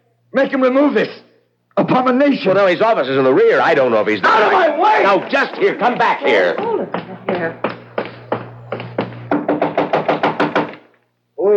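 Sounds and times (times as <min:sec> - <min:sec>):
speech: 0:00.3 - 0:07.7
low hum: 0:03.0 - 0:10.6
knocking on a door: 0:05.3 - 0:11.0.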